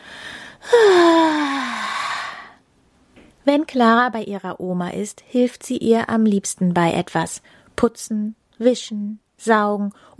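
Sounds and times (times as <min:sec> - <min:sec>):
loud drawn-out yawn: 0:00.6 - 0:02.5
speech: 0:03.4 - 0:10.1.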